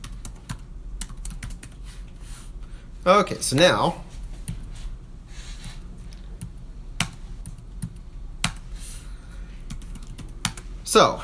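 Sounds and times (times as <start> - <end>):
typing on a computer keyboard: 0.0 - 1.8, 9.7 - 10.6
speech: 3.0 - 4.1, 11.0 - 11.2.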